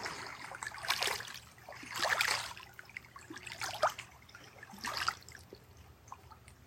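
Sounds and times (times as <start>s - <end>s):
small lake waves lapping and splashing against shore rock: 0.0s - 5.6s
low steady rumble of open lake water: 0.0s - 6.6s.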